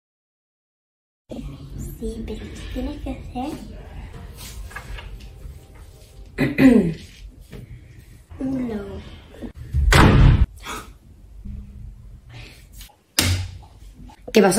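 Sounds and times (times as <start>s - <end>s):
speech: 1.3s - 3.8s, 6.4s - 7.0s, 14.4s - 14.5s
door slamming shut: 9.7s - 10.5s
sharp bang: 9.8s - 10.5s.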